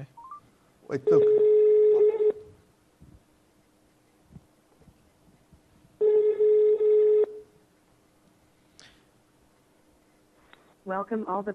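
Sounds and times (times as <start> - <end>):
faint noise: 0.0 - 11.5
speech: 0.9 - 1.5, 11.0 - 11.5
phone line ringback tone after dialing a call to Budapest: 1.0 - 2.6, 6.0 - 7.4.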